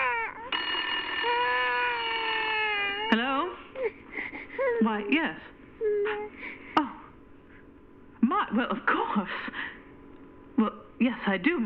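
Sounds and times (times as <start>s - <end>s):
electronic telephone ringing: 0.0s - 3.2s
speech: 4.8s - 6.3s, 8.3s - 9.6s, 10.6s - 11.6s.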